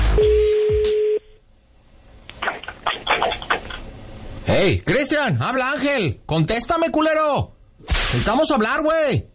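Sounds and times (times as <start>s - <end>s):
steady electronic tone of a redialed phone call: 0.2s - 1.4s
speech: 4.7s - 7.6s, 8.1s - 9.3s.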